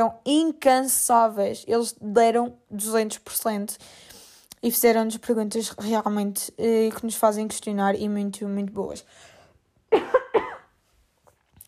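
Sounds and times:
speech: 0.0s - 9.3s
quick harsh coughs: 9.9s - 10.7s.

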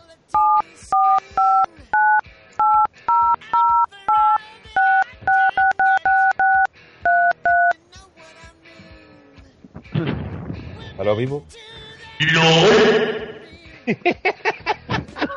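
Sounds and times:
touch-tone telephone keypad beeps: 0.4s - 7.7s
speech: 11.1s - 13.1s, 13.9s - 14.2s
laughter: 13.7s - 15.3s.

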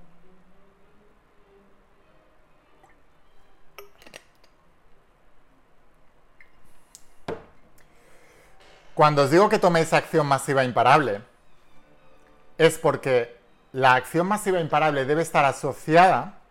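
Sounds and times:
glass of water clinking against a hard surface: 3.8s - 4.5s
speech: 9.0s - 11.3s, 12.6s - 16.4s.

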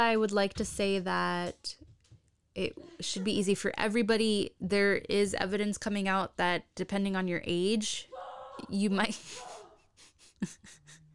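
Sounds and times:
speech: 0.0s - 1.9s, 2.6s - 9.5s, 10.4s - 10.8s
woman imitating a dog's barking at a dog: 8.1s - 9.8s.

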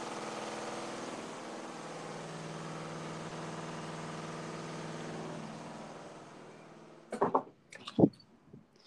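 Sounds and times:
washing machine rumbling in spin cycle: 0.0s - 7.1s
sharp knocks and clatters: 7.1s - 8.3s.

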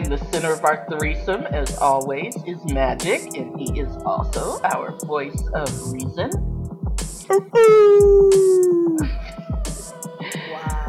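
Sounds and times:
speech: 0.1s - 6.5s, 7.3s - 10.0s
person imitating a dog howling: 7.3s - 9.1s.

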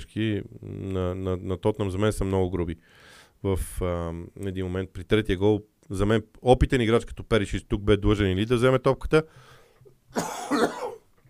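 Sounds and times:
speech: 0.0s - 10.9s
person coughing harshly: 10.1s - 11.1s.

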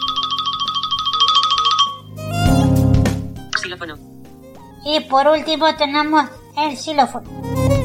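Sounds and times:
iPhone ringtone preview with fast repeating high trilling chirps: 0.0s - 2.3s
bright full electronic ringtone melody: 0.0s - 4.2s
speech: 3.7s - 4.1s, 4.8s - 7.5s.

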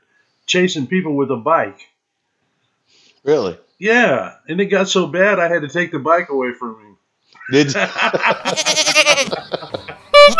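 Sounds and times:
speech: 0.5s - 1.9s, 3.2s - 10.0s
laughter: 7.4s - 10.3s
male goat bleating: 8.4s - 9.4s.

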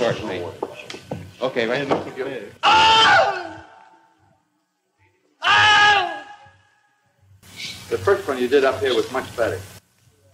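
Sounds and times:
speech: 0.0s - 3.5s, 7.9s - 9.7s
man imitating the pained scream of a man bitten by an alligator: 2.6s - 4.0s, 5.4s - 6.7s.

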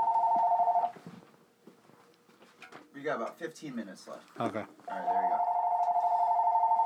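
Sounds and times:
telephone ringing with a bright electronic tone: 0.0s - 0.9s, 4.9s - 6.8s
speech: 3.0s - 5.5s.

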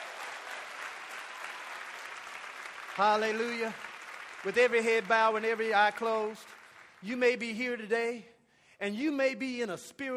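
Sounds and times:
church audience applauding: 0.0s - 7.5s
speech: 3.0s - 10.1s.

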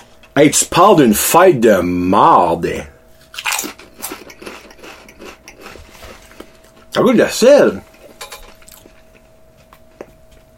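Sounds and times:
faint steady hum: 0.0s - 10.5s
speech: 0.4s - 2.9s, 7.0s - 7.9s
crunching seasoned potato chips: 3.2s - 6.6s.

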